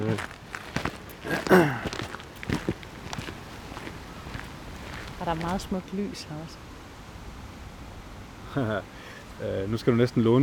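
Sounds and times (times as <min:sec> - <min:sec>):
speech: 0:00.0 - 0:00.4, 0:01.2 - 0:02.0, 0:05.3 - 0:06.7, 0:08.5 - 0:10.4
footsteps outdoors on a birdwatching walk: 0:00.0 - 0:06.2.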